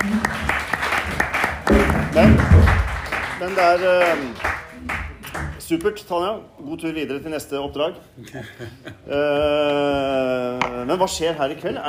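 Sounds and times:
audience applause: 0.0s - 5.5s
speech: 2.2s - 2.8s, 3.4s - 4.9s, 5.7s - 11.8s
laughter: 8.2s - 9.4s.

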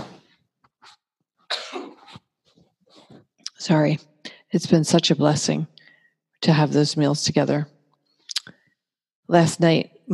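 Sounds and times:
sneeze: 1.5s - 2.2s
speech: 3.6s - 5.8s, 6.4s - 7.8s, 9.3s - 10.1s
breathing: 4.2s - 4.6s, 5.8s - 6.3s.

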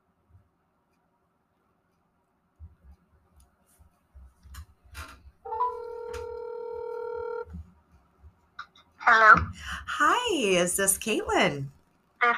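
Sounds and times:
steady loud electronic telephone tone: 5.5s - 7.5s
speech: 9.1s - 11.8s.

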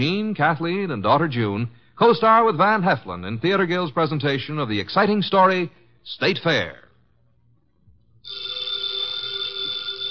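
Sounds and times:
speech: 0.0s - 6.8s
old telephone bell ringing: 8.2s - 10.0s.

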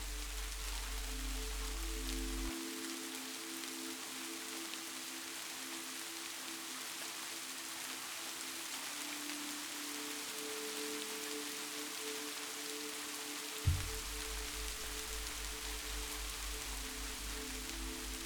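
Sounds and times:
steady rain pattering on a surface: 0.0s - 18.2s
soft thump: 13.7s - 15.2s
low hum: 13.7s - 18.1s.

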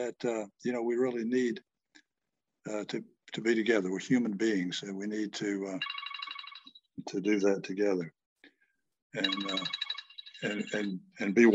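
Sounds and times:
speech: 0.0s - 1.7s, 2.6s - 6.0s, 7.0s - 8.2s, 9.1s - 9.8s, 10.4s - 11.5s
cell phone ringtone with bright warbling electronic melody: 5.8s - 6.7s, 9.2s - 10.9s.

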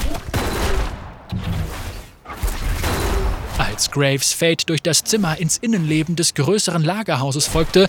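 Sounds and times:
dense volley of gunfire from several guns: 0.0s - 3.8s
speech: 3.8s - 7.8s.

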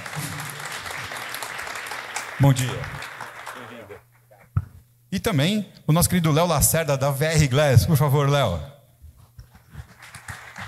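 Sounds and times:
audience applauding: 0.0s - 4.2s, 9.8s - 10.6s
speech: 2.4s - 3.1s, 5.1s - 8.8s.

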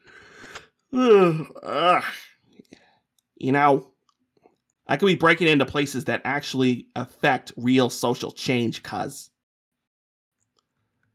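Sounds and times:
person yawning: 0.3s - 2.3s
speech: 0.9s - 2.2s, 3.4s - 3.9s, 4.9s - 9.3s.

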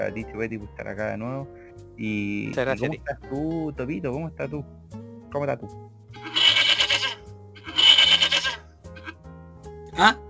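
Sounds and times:
speech: 0.0s - 6.3s, 10.0s - 10.2s
horse neighing: 6.2s - 9.2s.

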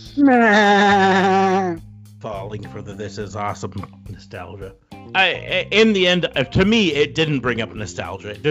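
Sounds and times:
person imitating a sheep with a nasal bleat: 0.2s - 1.8s
speech: 0.2s - 1.8s, 2.5s - 8.4s.

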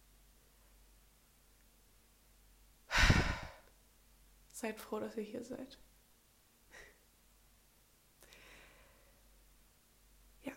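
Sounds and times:
single deep breath in and out: 2.9s - 3.7s, 8.3s - 9.3s
speech: 4.6s - 5.9s.

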